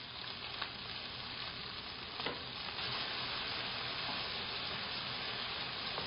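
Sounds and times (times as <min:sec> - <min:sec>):
vegetables sizzling in a pan in ginger garlic paste: 0:00.0 - 0:06.0.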